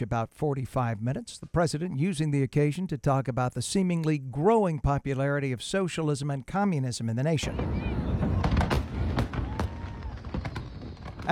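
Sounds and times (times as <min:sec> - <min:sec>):
speech: 0:00.0 - 0:08.1
fireworks shells bursting with sharp cracks and booms: 0:07.4 - 0:11.3
dense rumbling background of blasts: 0:07.5 - 0:11.3.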